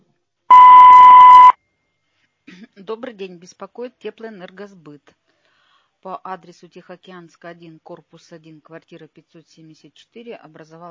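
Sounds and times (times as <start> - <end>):
voicemail beep: 0.5 - 1.5
speech: 2.9 - 5.2, 6.0 - 10.8.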